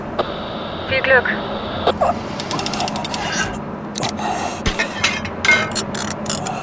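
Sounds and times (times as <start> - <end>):
speech: 0.2 - 3.6
metallic clanks and scraping of a part coupled onto a buggy hitch: 2.4 - 6.5.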